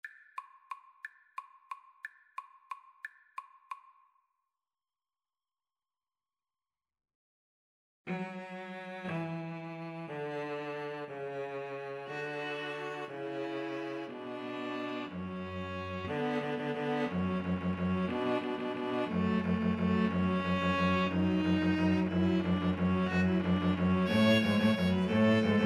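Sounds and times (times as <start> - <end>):
string trio playing: 8.1 - 25.6.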